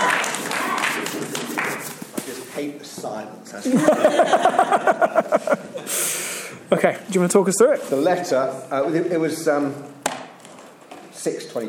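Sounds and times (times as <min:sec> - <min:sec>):
audience applauding: 0:00.0 - 0:01.9
speech: 0:02.6 - 0:10.0, 0:11.2 - 0:11.6
laughter: 0:03.6 - 0:06.0.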